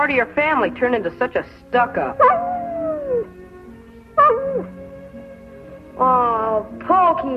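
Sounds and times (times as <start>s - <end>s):
speech: 0.0s - 2.5s, 6.0s - 7.3s
dog barking: 2.2s - 3.0s, 4.2s - 4.7s.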